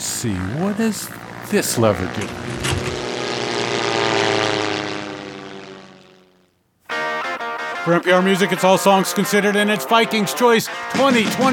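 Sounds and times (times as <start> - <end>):
propeller airplane engine droning as the plane lands: 0.0 - 7.2
speech: 0.2 - 2.9, 7.9 - 11.5.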